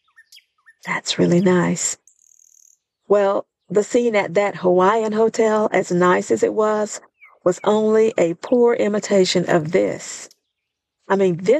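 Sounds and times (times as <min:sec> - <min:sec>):
faint high bird chirps outdoors in Bermuda: 0:00.0 - 0:03.8, 0:07.0 - 0:08.4
speech: 0:00.3 - 0:02.0, 0:03.1 - 0:10.4, 0:11.1 - 0:11.5.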